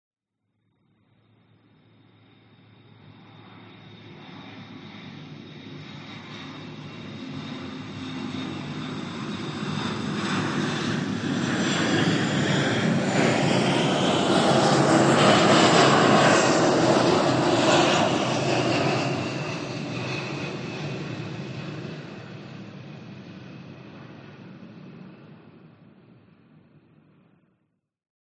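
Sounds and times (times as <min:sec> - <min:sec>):
military F15 or F16 jets flying overhead: 0:01.7 - 0:27.2.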